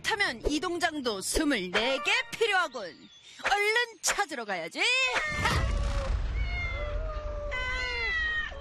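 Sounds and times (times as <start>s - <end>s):
speech: 0.1s - 5.6s
several cats meowing: 5.1s - 8.5s.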